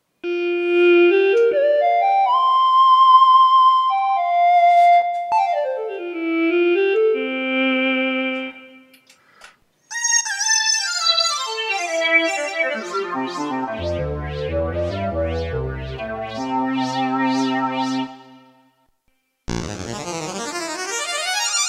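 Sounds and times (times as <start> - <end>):
electronic wind instrument: 0.2 - 8.9, 9.9 - 18.7, 19.5 - 21.6.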